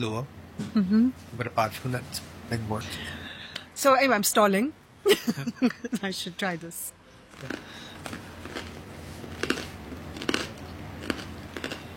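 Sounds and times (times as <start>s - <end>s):
speech: 0.0s - 3.2s, 3.8s - 8.2s
low hum: 0.0s - 11.9s
person biting into crusty bread: 7.3s - 11.9s.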